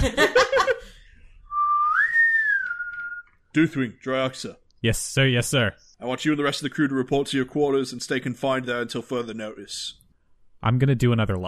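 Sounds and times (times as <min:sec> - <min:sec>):
laughter: 0:00.0 - 0:01.0
person whistling a TV show theme: 0:01.5 - 0:03.3
speech: 0:03.6 - 0:10.0, 0:10.6 - 0:11.4.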